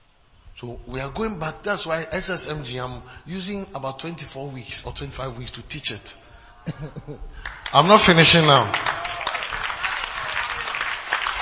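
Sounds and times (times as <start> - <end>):
speech: 0.6 - 9.0
laughter: 6.6 - 7.5
audience clapping: 7.4 - 11.4.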